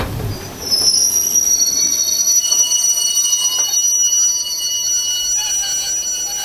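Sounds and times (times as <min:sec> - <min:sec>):
low rolling rumble of an iron ore freight train: 0:00.0 - 0:02.8
steel wheels of a long iron ore freight train screeching into a station: 0:00.2 - 0:06.4.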